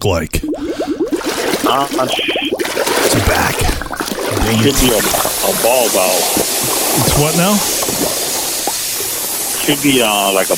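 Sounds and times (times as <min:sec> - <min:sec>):
speech: 0:00.0 - 0:00.9, 0:01.6 - 0:03.7, 0:04.3 - 0:08.0, 0:09.6 - 0:10.5
hand sloshing through floodwater: 0:00.4 - 0:08.7.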